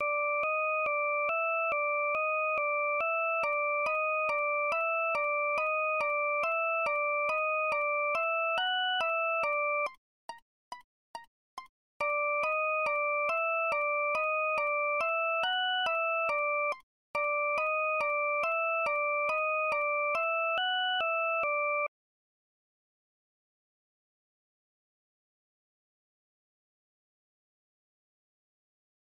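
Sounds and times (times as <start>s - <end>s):
flute ringtone: 0.0s - 11.3s, 12.0s - 21.9s.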